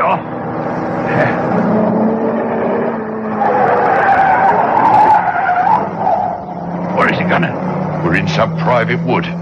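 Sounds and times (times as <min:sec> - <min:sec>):
car engine roaring: 0:00.0 - 0:09.4
car tires squealing in a skid: 0:00.0 - 0:09.4
speech: 0:08.4 - 0:09.4.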